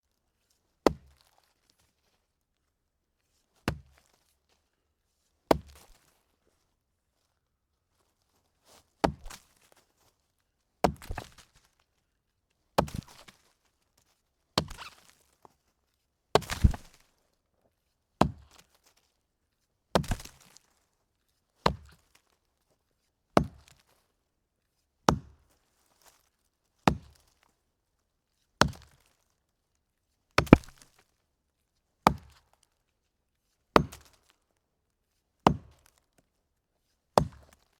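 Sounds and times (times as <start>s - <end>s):
chopping log: 0.9s - 1.2s, 3.7s - 3.9s, 5.5s - 5.9s, 9.0s - 9.5s, 10.8s - 11.5s, 12.8s - 13.3s, 14.6s - 15.0s, 16.4s - 17.0s, 20.0s - 20.6s, 21.6s - 22.0s, 23.4s - 23.8s, 25.1s - 25.4s, 26.9s - 27.2s, 28.6s - 29.0s, 30.4s - 30.8s, 32.0s - 32.4s, 33.8s - 34.2s, 35.4s - 36.0s, 37.2s - 37.6s.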